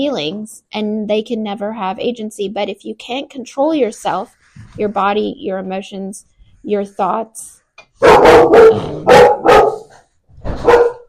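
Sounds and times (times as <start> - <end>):
speech: 0.0 - 9.3
dogs barking: 8.0 - 10.0, 10.6 - 11.0.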